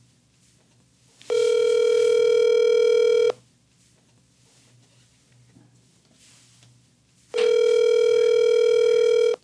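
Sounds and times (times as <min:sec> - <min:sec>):
faint hum: 0:00.0 - 0:09.4
phone ringing tone on an outgoing call: 0:01.3 - 0:03.4, 0:07.4 - 0:09.4.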